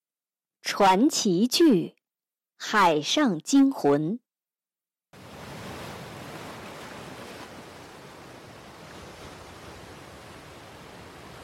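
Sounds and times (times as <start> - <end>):
speech: 0.7 - 2.0, 2.6 - 4.2
ocean waves washing onto a sandy beach: 5.2 - 11.4.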